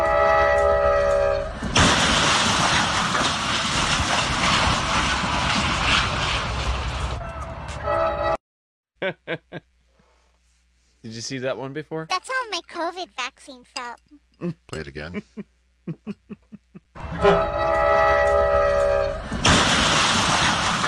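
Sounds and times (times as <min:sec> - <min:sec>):
train horn blaring: 0:00.0 - 0:01.6, 0:07.2 - 0:08.4, 0:17.0 - 0:19.4
loud crashing roar of grinding metal and rumbling wreckage: 0:01.5 - 0:07.2, 0:17.0 - 0:20.8
laughter: 0:09.0 - 0:09.6, 0:14.4 - 0:16.9
speech: 0:11.0 - 0:16.3, 0:17.1 - 0:18.3.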